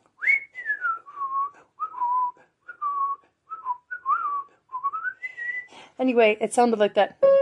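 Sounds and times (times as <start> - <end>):
person whistling a wavering tune imitating a cartoon character: 0.2 - 5.7
speech: 6.0 - 7.3.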